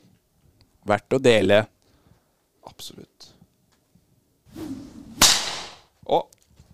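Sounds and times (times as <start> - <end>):
speech: 0.9 - 1.8, 2.6 - 3.3, 6.1 - 6.4
whip crack sound effect: 4.6 - 5.9.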